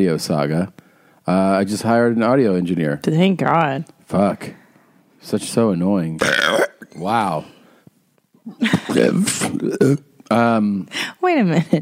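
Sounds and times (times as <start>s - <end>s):
speech: 0.0s - 4.6s, 5.2s - 7.6s, 8.5s - 11.7s
long loud croaky burp: 6.2s - 7.1s, 9.1s - 10.0s.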